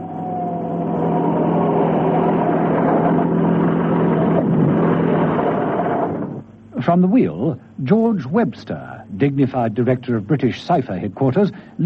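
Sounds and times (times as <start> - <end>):
large black limousine engine hum and road rumble: 0.0 - 6.5
speech: 6.9 - 11.8.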